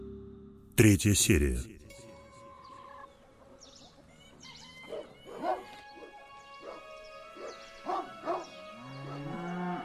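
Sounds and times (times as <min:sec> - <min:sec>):
speech: 0:00.8 - 0:01.8
short sharp barking-like livestock calls: 0:04.8 - 0:08.5
long low drawn-out cow moo: 0:08.7 - 0:09.8.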